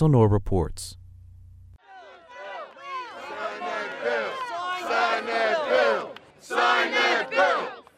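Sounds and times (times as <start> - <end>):
speech: 0.0 - 1.0
large crowd of marching protesters chanting in unison: 1.8 - 7.9.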